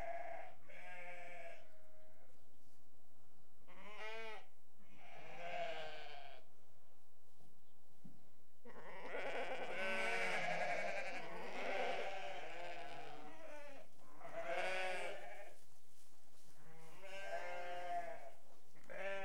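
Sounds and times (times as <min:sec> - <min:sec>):
restless sheep bleating: 0:03.7 - 0:06.4, 0:08.7 - 0:15.6, 0:16.6 - 0:19.2.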